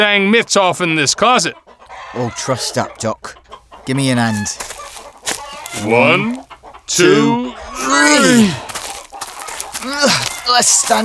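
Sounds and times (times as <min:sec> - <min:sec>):
speech: 0:00.0 - 0:04.8, 0:05.7 - 0:08.7, 0:09.8 - 0:11.0
hen clucking in a chicken shed: 0:01.2 - 0:11.0
hen squawking in a chicken shed: 0:03.3 - 0:11.0.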